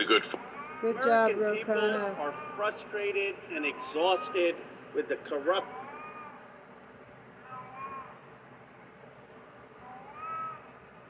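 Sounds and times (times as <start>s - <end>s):
speech: 0.0s - 5.8s
steady low hum: 0.0s - 11.0s
cat meowing: 0.3s - 4.6s, 5.5s - 6.5s, 7.4s - 8.2s, 9.8s - 10.7s.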